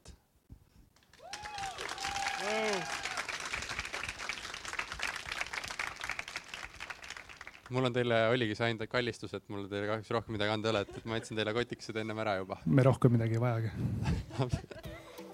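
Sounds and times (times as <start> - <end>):
audience applause: 1.0 - 7.8
whoops and cheers: 1.1 - 3.8
speech: 7.7 - 14.8
laughter: 10.7 - 11.4, 14.0 - 15.3.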